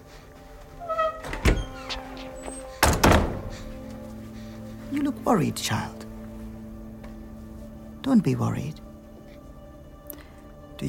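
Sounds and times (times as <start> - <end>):
door closing: 0.8 - 4.0
speech: 5.0 - 6.0, 8.1 - 8.8.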